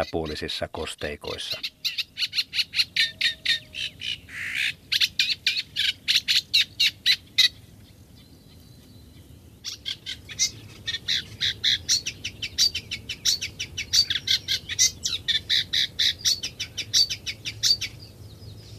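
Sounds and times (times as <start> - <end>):
speech: 0.0 - 2.0
Eurasian reed warbler song with churring and chattering phrases: 0.0 - 18.7.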